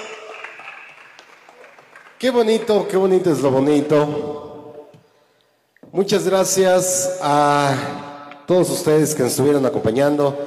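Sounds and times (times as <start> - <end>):
crowd applauding: 0.0 - 3.4
speech: 2.2 - 4.5, 6.0 - 10.4.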